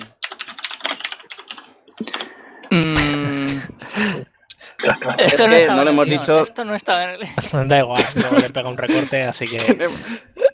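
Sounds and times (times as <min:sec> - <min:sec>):
rapid typing on a computer keyboard: 0:00.0 - 0:02.3
laughter: 0:02.7 - 0:10.5
speech: 0:05.2 - 0:10.3.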